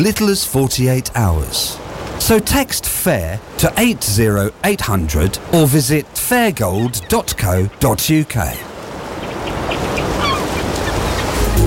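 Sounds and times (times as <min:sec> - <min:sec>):
speech: 0:00.0 - 0:08.7
seagull squawking: 0:06.7 - 0:07.3, 0:09.2 - 0:11.4.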